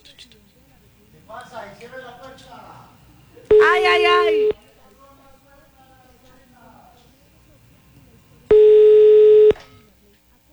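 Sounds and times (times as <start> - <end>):
speech: 1.3 - 4.6
telephone line tone during a call: 3.0 - 4.6, 7.0 - 9.9.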